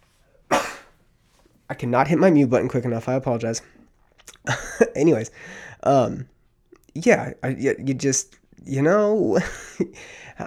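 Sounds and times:
person sneezing: 0.5 - 1.0
speech: 1.7 - 3.8, 4.4 - 6.3, 6.9 - 10.4.

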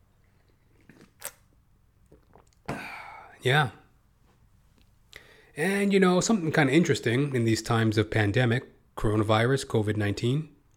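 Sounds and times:
low hum: 0.0 - 10.7
mouth and swallowing sounds: 0.2 - 1.4, 2.0 - 3.1
person slurping coffee: 0.4 - 1.5, 2.1 - 2.8
speech: 3.4 - 3.8, 5.6 - 10.6.

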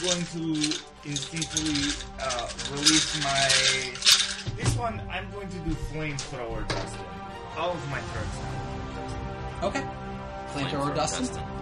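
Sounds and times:
dry rattling clatter of sticks or bones knocking together: 0.0 - 4.9
speech: 0.0 - 8.8, 9.6 - 11.6.

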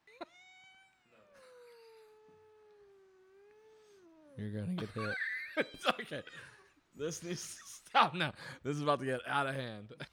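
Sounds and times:
cat meowing in a long sliding wail: 0.1 - 1.6
speech: 4.4 - 10.1.

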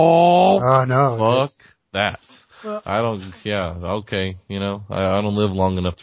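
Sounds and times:
person vocally imitating a manual stick-shift car engine revving: 0.0 - 2.2
speech: 0.0 - 6.0.

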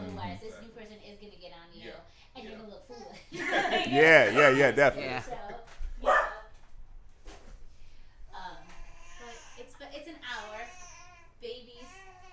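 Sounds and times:
speech: 2.0 - 5.4
laughter: 3.3 - 5.4
dog barking: 6.0 - 6.5.

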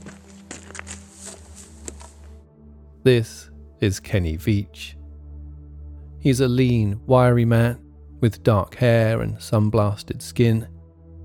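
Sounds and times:
footsteps crunching on loose ground near an old mine shaft: 0.0 - 2.4
speech: 3.0 - 5.0, 6.2 - 10.8.

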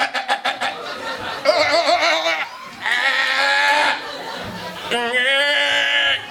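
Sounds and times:
laughter: 0.0 - 6.3
Icelandic sheep bleating: 1.5 - 4.0, 4.9 - 6.3.

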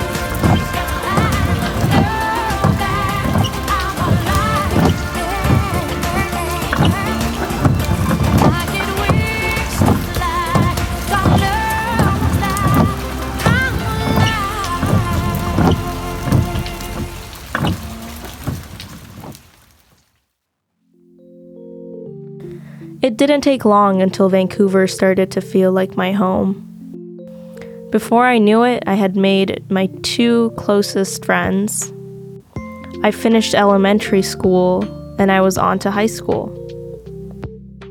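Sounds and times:
music playing inside a car: 0.0 - 18.6, 21.0 - 37.8
car windshield wipers sweeping: 0.0 - 19.9
steady rain pattering on a car: 0.0 - 20.3
speech: 23.1 - 26.7, 27.9 - 32.0, 33.0 - 36.6.

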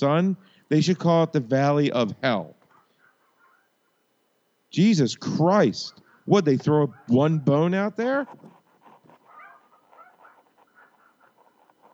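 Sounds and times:
speech: 0.0 - 2.6, 4.7 - 8.6
small dogs yapping outdoors beyond a window: 6.7 - 7.6, 8.2 - 11.9.

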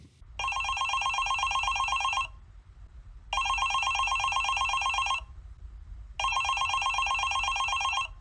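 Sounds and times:
low steady hum: 0.0 - 8.1
electronic telephone ring on an outgoing call: 0.4 - 2.4, 3.4 - 5.3, 6.2 - 8.1.

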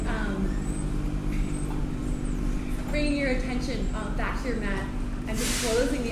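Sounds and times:
large milk delivery truck with heavy diesel engine backing up: 0.0 - 6.1
speech: 3.3 - 6.1
faint airy hissing: 5.4 - 6.0.

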